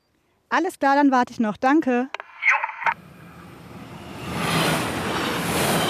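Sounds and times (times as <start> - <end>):
speech: 0.5 - 2.2
train passing at a railway crossing with rolling wheels: 3.0 - 5.8.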